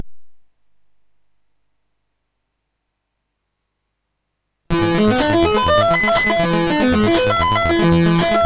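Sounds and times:
detuned synth lead on a MOS6581R3 sound chip: 0:04.7 - 0:08.4.

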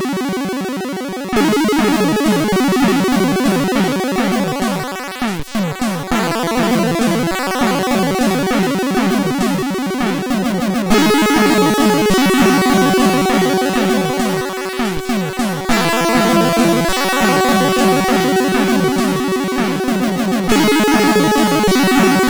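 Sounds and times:
airplane sound on a MOS6581R3 SID chip: 0:00.1 - 0:22.2.

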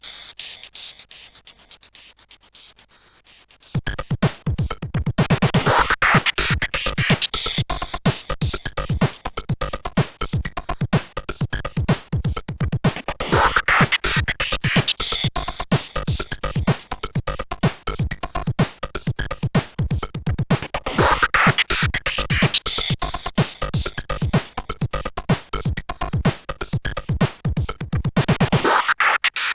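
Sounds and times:
drums: 0:03.7 - 0:29.4.

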